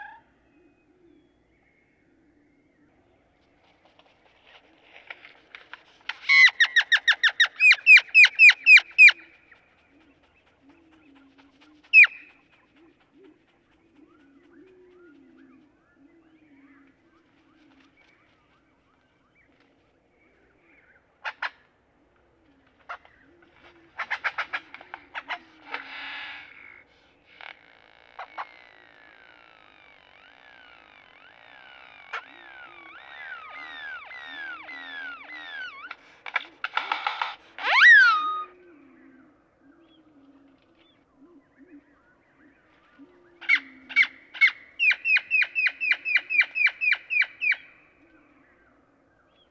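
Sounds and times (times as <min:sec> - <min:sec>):
Great-tailed Grackle calling: 0:06.1 - 0:15.7, 0:22.8 - 0:38.8, 0:43.0 - 0:48.1.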